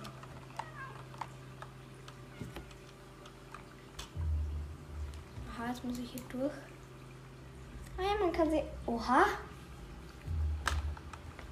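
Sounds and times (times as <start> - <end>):
cat meowing: 0.5 - 1.1
steady low hum: 1.4 - 11.5
soft low rumble: 4.0 - 11.5
speech: 5.7 - 6.7, 8.0 - 9.5.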